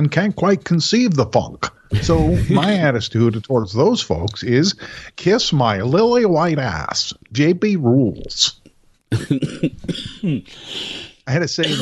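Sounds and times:
speech: 0:00.0 - 0:11.8
person laughing and coughing: 0:02.0 - 0:02.8, 0:09.1 - 0:11.0, 0:11.6 - 0:11.8.

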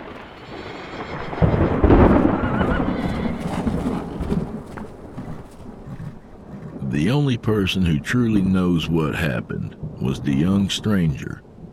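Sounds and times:
heavy roll of thunder: 0:00.0 - 0:11.7
torrential rain: 0:00.0 - 0:11.7
horse whinnying: 0:00.4 - 0:07.0
speech: 0:07.0 - 0:11.5.

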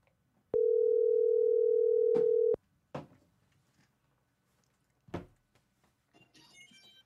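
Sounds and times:
steady electronic phone ringing tone: 0:00.6 - 0:02.6.

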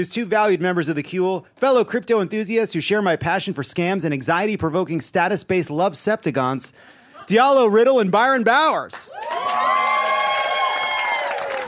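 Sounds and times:
speech: 0:00.0 - 0:09.8
polite clapping: 0:08.8 - 0:11.6
live audience cheering and whooping: 0:09.0 - 0:11.6.

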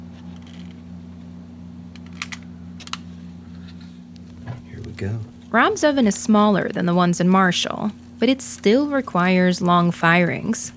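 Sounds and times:
burning crumpled paper crackling and popping: 0:03.5 - 0:10.7
speech: 0:05.0 - 0:10.7.

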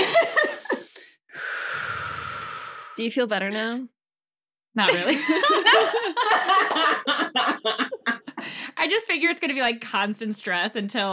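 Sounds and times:
laughter: 0:00.0 - 0:00.7, 0:04.9 - 0:08.4
person taking a deep breath: 0:00.4 - 0:03.0
speech: 0:03.0 - 0:04.0, 0:04.8 - 0:07.9, 0:08.8 - 0:11.1.

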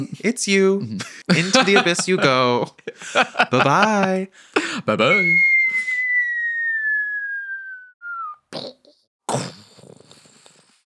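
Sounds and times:
speech: 0:00.0 - 0:05.5
laughter: 0:01.0 - 0:05.3
person whistling one long falling note as a mouth-made sound effect: 0:05.1 - 0:08.4.

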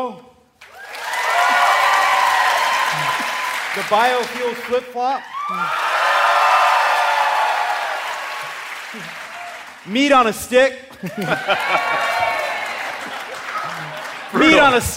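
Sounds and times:
audience applause for a vote: 0:00.6 - 0:10.0, 0:10.9 - 0:14.9
speech: 0:03.8 - 0:05.9, 0:09.8 - 0:12.4, 0:14.4 - 0:14.9
laughter: 0:10.9 - 0:14.9.

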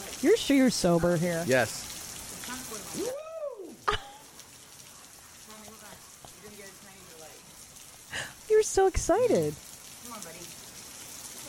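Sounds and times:
heavy rain pouring down during a storm: 0:00.0 - 0:11.4
speech: 0:00.2 - 0:01.9, 0:08.6 - 0:10.6
voice exclaiming: 0:02.9 - 0:03.9.

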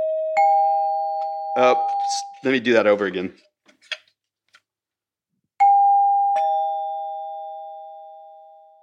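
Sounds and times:
electric doorbell two-note ding-dong chime: 0:00.0 - 0:02.2, 0:05.6 - 0:08.8
speech: 0:01.6 - 0:04.0.

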